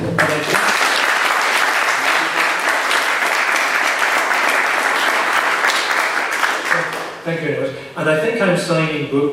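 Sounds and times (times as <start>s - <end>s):
crowd applause: 0.0s - 7.2s
speech: 8.0s - 9.3s.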